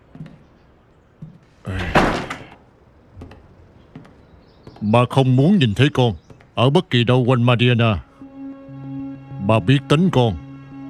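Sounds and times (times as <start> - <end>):
door swinging shut with a thud and rattle: 1.7 - 2.6
speech: 4.8 - 8.1, 9.5 - 10.4.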